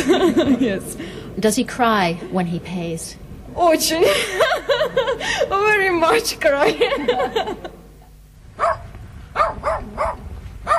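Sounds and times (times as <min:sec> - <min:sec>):
laughter: 0:00.0 - 0:01.0, 0:04.0 - 0:05.6, 0:06.5 - 0:08.1
speech: 0:00.0 - 0:07.8
low rumble of noise in a village: 0:00.0 - 0:10.7
dogs barking outdoors in a village: 0:08.5 - 0:10.7.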